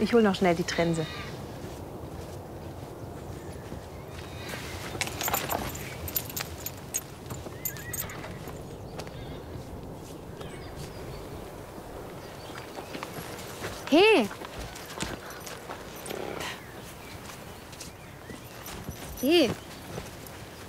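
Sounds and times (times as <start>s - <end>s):
speech: 0.0s - 1.4s
busy stable background: 0.0s - 20.6s
horse hooves clip-clopping: 1.3s - 20.6s
horse whinnying: 7.6s - 8.6s.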